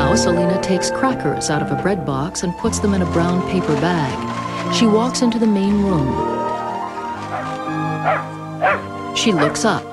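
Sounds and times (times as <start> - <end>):
speech: 0.2 - 6.4, 9.2 - 9.9
shaggy dog barking in a building hallway: 7.2 - 9.7.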